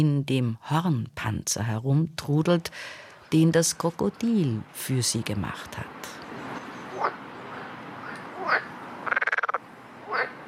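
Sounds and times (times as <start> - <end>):
speech: 0.0 - 6.2
soft hiss: 0.0 - 10.4
frog croaking: 6.2 - 10.4
frog rattling trill: 8.0 - 10.3.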